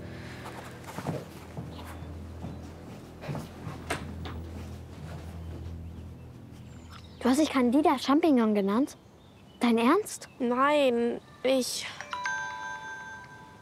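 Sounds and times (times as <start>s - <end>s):
steady low hum: 0.0s - 8.4s
footsteps thudding: 0.4s - 6.5s
speech: 7.2s - 9.0s, 9.6s - 12.0s.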